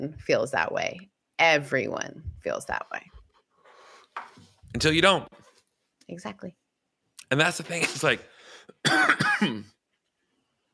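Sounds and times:
speech: 0.0 - 3.2, 4.2 - 5.4, 6.1 - 6.6, 7.3 - 9.8
person coughing and throat clearing against a microphone: 7.7 - 8.2, 8.8 - 9.8.

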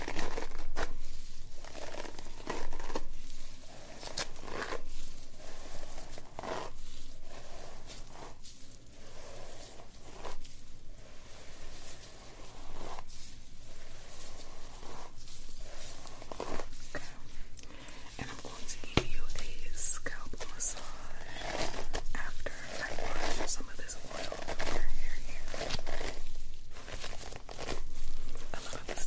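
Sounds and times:
scratchy brushing and crinkling strokes through hair: 0.0 - 29.0
writing sounds: 0.0 - 29.0
soft whisper: 14.4 - 26.3, 28.3 - 29.0.

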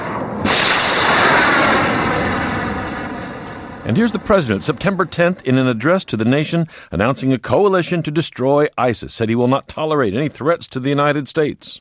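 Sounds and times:
cruise missile launched from a warship in the Arabian Gulf: 0.0 - 6.8
speech: 3.9 - 11.7.

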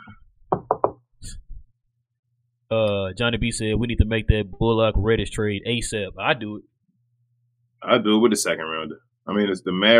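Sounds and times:
knocks on a hard surface: 0.5 - 1.0
speech: 2.7 - 6.7, 7.8 - 9.9.

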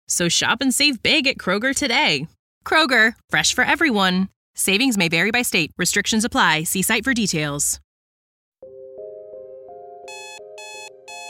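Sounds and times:
speech: 0.1 - 7.8
alarm clock ringing with a rapidly repeating electronic tone: 10.1 - 11.2
loud shrill high-pitched bursts: 10.1 - 11.2.

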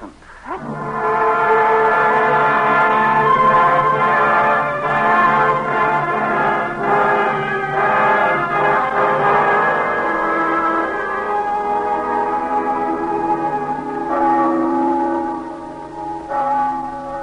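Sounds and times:
church bells tolling for the dead: 0.6 - 17.2.

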